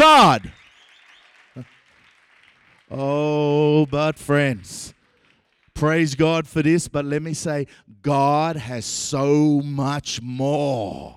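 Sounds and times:
church audience clapping at a church facility blessing in Denton Texas: 0.0s - 6.5s
speech: 2.9s - 5.0s, 5.8s - 11.1s.

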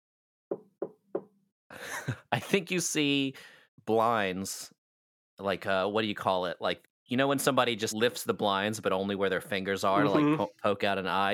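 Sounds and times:
knocking on door of a tractor-trailer home: 0.5s - 1.3s
speech: 1.8s - 4.8s, 5.4s - 11.3s.

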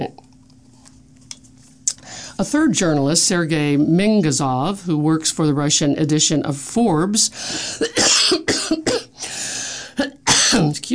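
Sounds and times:
speech: 2.4s - 9.0s, 10.6s - 10.9s
person coughing from a tickle in the throat: 7.6s - 10.8s.

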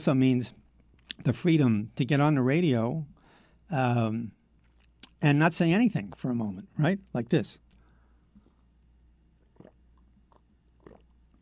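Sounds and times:
speech: 0.0s - 0.6s, 1.2s - 4.4s, 5.2s - 7.6s
low hum: 0.0s - 11.3s
person swallowing close to the microphone: 9.4s - 11.3s.

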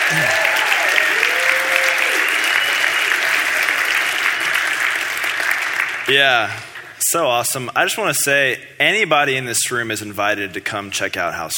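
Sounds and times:
crowd applause: 0.0s - 7.0s
speech: 0.1s - 0.4s, 6.1s - 11.5s
faint whistles: 2.4s - 3.2s.

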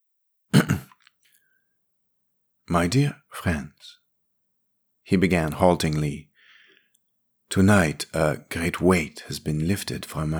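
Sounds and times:
man clearing his throat: 0.6s - 0.9s
speech: 2.7s - 4.0s, 5.1s - 6.3s, 7.5s - 10.3s.

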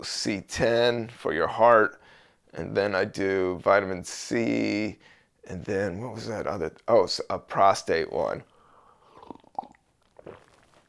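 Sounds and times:
speech: 0.0s - 8.5s
quiet swallowing sounds: 8.5s - 10.8s
person gulping seltzer water: 8.9s - 10.8s.

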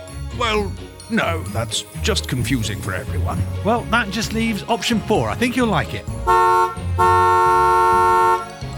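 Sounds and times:
speech: 0.4s - 7.3s
car horn honking: 6.2s - 8.6s.

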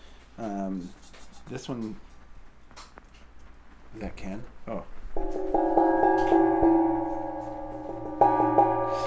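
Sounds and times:
speech: 0.4s - 2.1s, 3.9s - 6.8s
old Asian chime struck and ringing: 5.2s - 9.0s.

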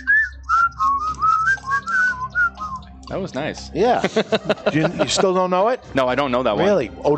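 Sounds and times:
person whistling a classic song melody: 0.0s - 3.0s
speech: 3.1s - 7.1s
laughter: 3.8s - 5.8s.

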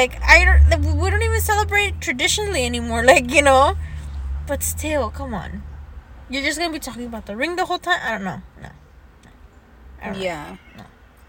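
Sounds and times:
speech: 0.0s - 3.9s, 4.5s - 5.7s, 6.3s - 8.8s, 10.0s - 10.9s
cat yowling: 10.4s - 10.9s.

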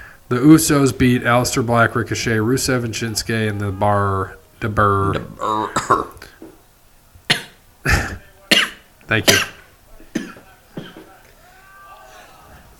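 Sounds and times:
speech: 0.3s - 6.3s, 9.1s - 9.5s
harsh coughs: 5.4s - 6.3s, 7.3s - 9.6s.

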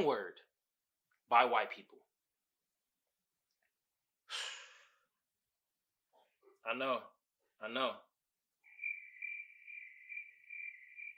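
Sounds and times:
speech: 0.0s - 0.5s, 1.3s - 2.0s, 6.6s - 8.1s
high-pitched pulsing trill of crickets chirping: 8.6s - 11.1s.

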